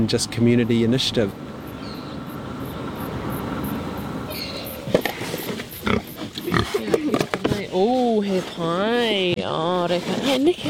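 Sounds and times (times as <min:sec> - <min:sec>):
speech: 0:00.0 - 0:01.6, 0:07.8 - 0:10.6
faint activity: 0:00.0 - 0:09.3
pig grunting and snorting while eating scraps: 0:04.3 - 0:08.7.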